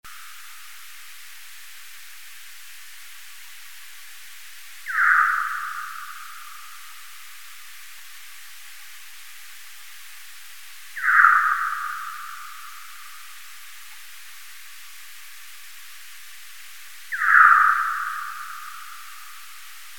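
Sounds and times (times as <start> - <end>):
Tadarina australis bat calls: 4.8 - 7.0, 11.0 - 13.4, 17.1 - 19.6.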